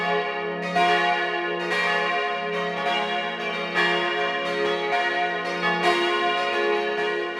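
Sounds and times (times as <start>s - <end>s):
church bells ringing at noon: 0.0s - 7.3s.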